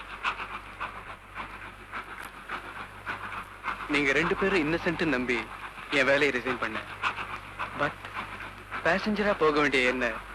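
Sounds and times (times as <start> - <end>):
moving train rumbling on rails with rhythmic clacks: 0.0 - 10.3
speech: 3.9 - 7.0, 7.8 - 8.0, 8.8 - 10.3.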